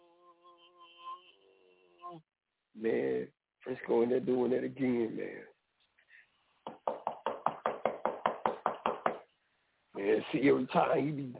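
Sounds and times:
speech: 2.0 - 5.5, 10.0 - 11.3
loud pounding knocks on a door: 6.7 - 9.2.

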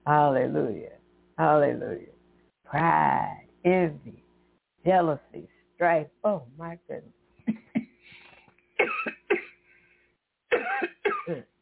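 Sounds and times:
speech: 0.0 - 2.1, 2.7 - 4.2, 4.8 - 7.6, 10.8 - 11.5
harsh coughs from a tickle in the throat: 8.2 - 9.6, 10.5 - 11.5.

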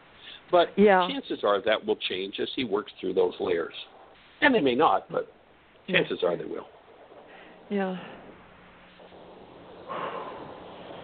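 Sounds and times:
speech: 0.5 - 6.8, 7.7 - 8.2
deep breath in: 9.0 - 11.0.

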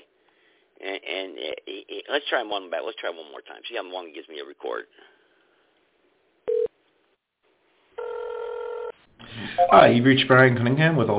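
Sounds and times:
speech: 0.8 - 5.2, 9.4 - 11.1
long steady phone line ringback tone: 6.5 - 6.7, 8.0 - 8.9.

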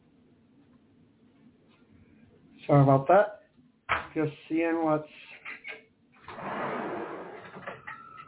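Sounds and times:
speech: 2.7 - 3.4, 4.2 - 5.2
back door sliding open: 6.2 - 8.2.

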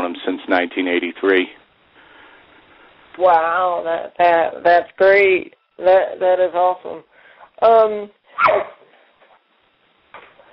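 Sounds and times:
speech: 0.5 - 1.6, 3.2 - 8.8
pet dog barking: 8.4 - 8.9.

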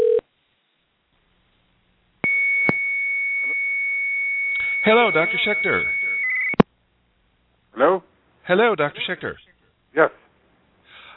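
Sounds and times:
telephone dialing out electronic beep: 2.2 - 6.6
speech: 4.8 - 6.0, 7.8 - 9.4, 10.0 - 10.2.

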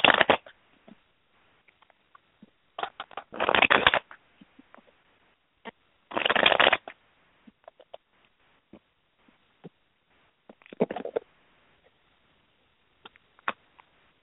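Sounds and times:
cards being shuffled: 0.0 - 0.5, 2.8 - 4.1, 6.1 - 7.0.

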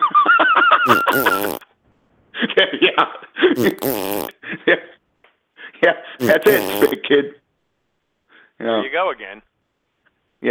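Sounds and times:
fart sound effect: 0.9 - 1.6, 3.6 - 4.3, 6.2 - 7.0
speech: 0.9 - 1.6, 2.6 - 4.9, 5.8 - 7.4, 8.6 - 9.5.

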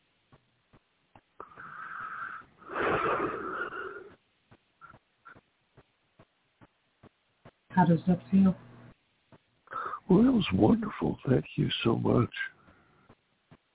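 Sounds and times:
deep breath in and out during a guided relaxation: 1.4 - 4.2, 9.7 - 10.1
speech: 7.8 - 8.7, 10.1 - 12.6.

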